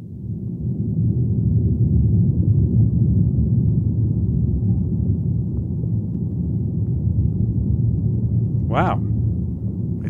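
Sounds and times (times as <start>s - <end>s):
tree leaves trembling in a thunderstorm picked up by a hydrophone: 0.0s - 10.0s
voice exclaiming: 8.7s - 9.0s.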